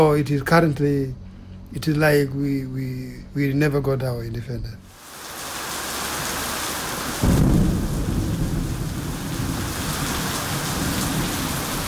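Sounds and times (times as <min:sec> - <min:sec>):
speech: 0:00.0 - 0:04.8
heavy rain pouring: 0:04.9 - 0:11.8
deep loud thunderclap: 0:07.2 - 0:11.8.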